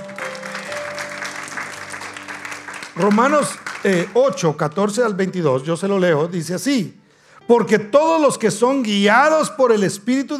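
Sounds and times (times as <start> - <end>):
audience applauding loudly: 0.0 - 5.0
speech: 3.0 - 10.3.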